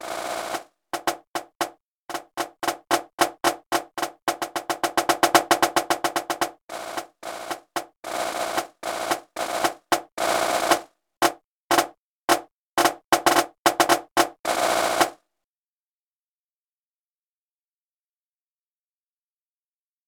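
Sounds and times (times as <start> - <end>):
snare drum: 0.0 - 15.2.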